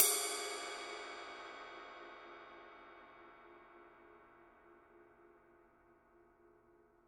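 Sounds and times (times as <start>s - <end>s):
Paiste Signature 21 Dark Energy Ride Mark II ride cymbal body: 0.0s - 2.8s.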